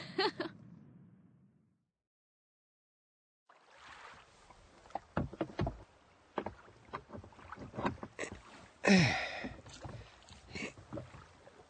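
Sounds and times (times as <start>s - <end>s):
rowing boat oars splashing through water: 3.5s - 11.6s.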